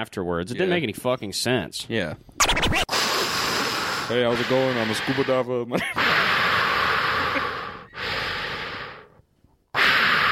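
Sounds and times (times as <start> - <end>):
speech: 0.0 - 2.9, 4.1 - 6.4
heavy breathy exhalations against the microphone: 2.9 - 10.3.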